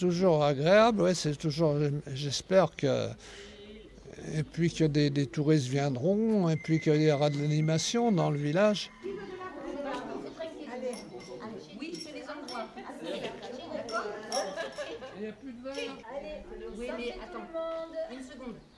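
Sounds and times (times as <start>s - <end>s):
speech: 0.0s - 3.5s, 4.2s - 9.3s, 15.2s - 18.7s
crowd of lively overlapping voices chatting and laughing on a village square: 3.3s - 18.7s
glasses clinking in a toast on a village square: 10.8s - 12.9s, 13.8s - 15.0s, 15.7s - 16.0s.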